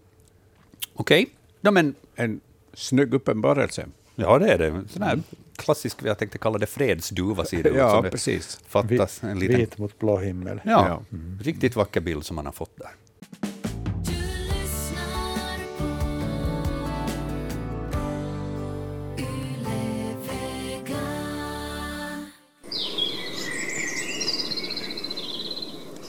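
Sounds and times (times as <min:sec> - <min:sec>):
speech: 0:01.0 - 0:13.0
music: 0:13.2 - 0:22.6
several birds singing and chirping outdoors in early morning: 0:22.7 - 0:26.0.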